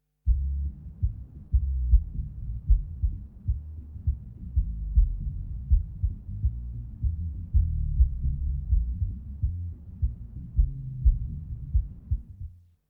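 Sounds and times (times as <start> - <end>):
bass burble: 0.3 - 12.6.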